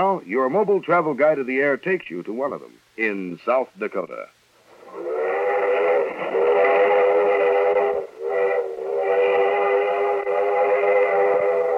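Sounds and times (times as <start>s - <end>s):
speech: 0.0s - 5.2s
steam train whistle blowing: 4.8s - 11.7s.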